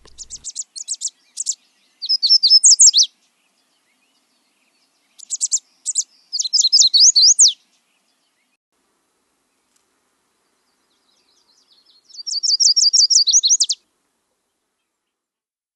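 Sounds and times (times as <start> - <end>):
yellow warbler singing: 0.0 - 8.6, 10.4 - 13.8.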